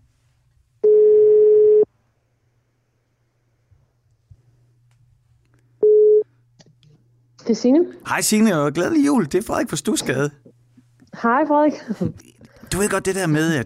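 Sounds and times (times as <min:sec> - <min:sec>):
telephone ringback tone while placing a call: 0:00.8 - 0:01.8
speech: 0:07.5 - 0:10.5, 0:11.2 - 0:13.6.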